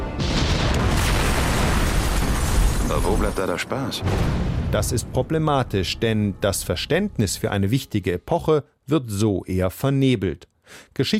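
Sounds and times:
video game explosion: 0.2s - 5.2s
speech: 3.0s - 11.1s.

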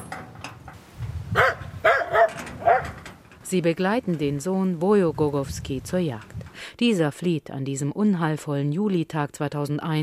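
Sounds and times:
dogs barking: 1.3s - 3.0s
speech: 3.5s - 10.0s.

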